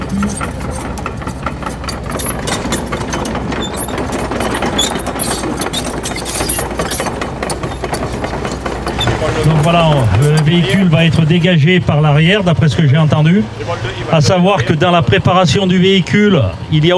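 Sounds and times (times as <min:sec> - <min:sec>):
faint rattling: 0:00.0 - 0:11.6
heavy excavator engine running while lifting a stuck vehicle: 0:00.0 - 0:11.6
speech: 0:09.4 - 0:16.9.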